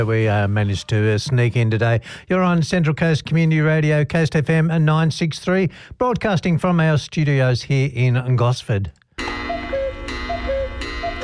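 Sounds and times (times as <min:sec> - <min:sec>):
speech: 0:00.0 - 0:09.5
cuckoo clock two-note cuckoo calls: 0:09.2 - 0:11.2.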